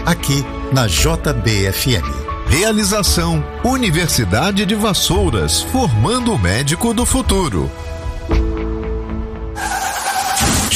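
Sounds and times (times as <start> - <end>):
speech: 0.1 - 8.4
car crash: 9.6 - 10.7
car tires screeching as the car skids: 9.6 - 10.7.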